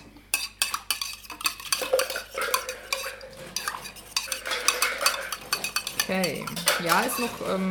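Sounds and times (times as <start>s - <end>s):
long spoon stirring sticky orange marmalade with peel: 0.0s - 7.6s
speech: 6.1s - 7.6s.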